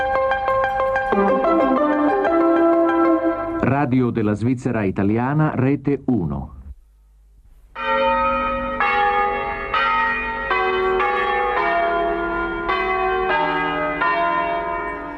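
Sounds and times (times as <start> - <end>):
church bells of Pazzalino ringing in a steady peal: 0.0 - 3.9, 7.8 - 15.1
speech: 1.1 - 1.8, 3.6 - 6.6.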